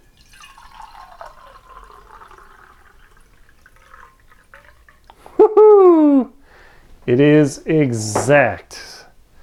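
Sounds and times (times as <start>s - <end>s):
water pouring into a Pyrex cup: 0.0s - 5.2s
speech: 7.1s - 8.9s.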